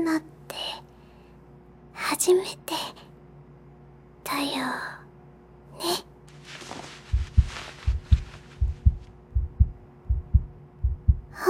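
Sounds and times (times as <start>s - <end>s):
speech: 0.0s - 0.9s, 2.0s - 3.0s, 4.3s - 5.0s, 5.8s - 6.1s
heartbeat heard while two people are pressed close together: 7.0s - 11.4s.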